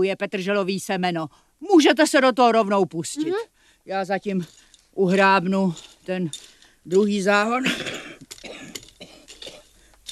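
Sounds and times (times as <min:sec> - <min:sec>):
speech: 0:00.0 - 0:07.9
woman coughing raspily while working in a garden: 0:07.6 - 0:09.7.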